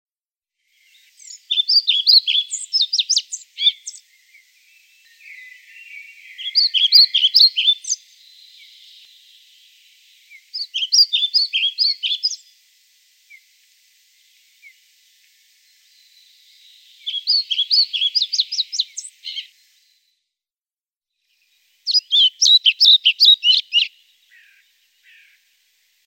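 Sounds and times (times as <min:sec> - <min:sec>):
European pied flycatcher: 0:00.6 - 0:19.8, 0:21.3 - 0:25.4.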